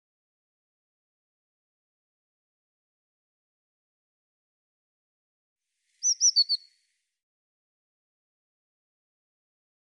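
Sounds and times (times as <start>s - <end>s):
Eurasian blue tit call of thin high notes: 6.0s - 6.6s.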